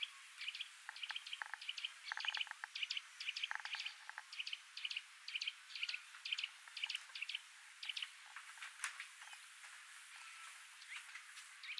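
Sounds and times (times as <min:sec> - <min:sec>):
Eurasian nuthatch calling: 0:00.0 - 0:08.2
faint hiss: 0:00.0 - 0:11.7.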